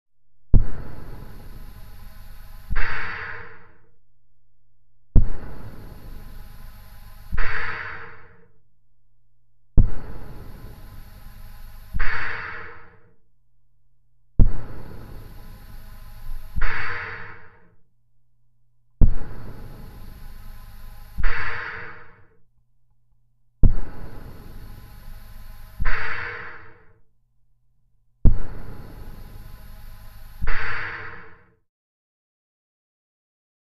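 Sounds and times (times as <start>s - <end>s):
respirator breathing heard from inside: 0.5s - 4.0s, 5.1s - 8.6s, 9.8s - 13.2s, 14.4s - 17.8s, 19.0s - 22.4s, 23.6s - 27.0s, 28.2s - 31.5s.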